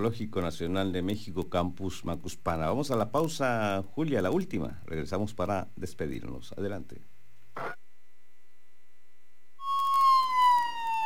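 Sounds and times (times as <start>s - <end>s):
speech: 0.0s - 7.8s
police patrol car siren wailing: 9.6s - 11.0s.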